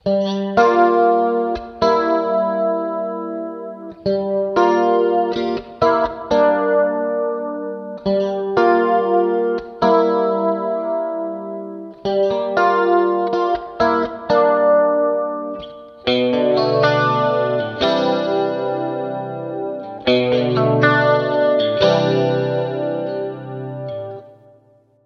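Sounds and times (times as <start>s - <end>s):
wet guitar chords: 0.0s - 25.0s.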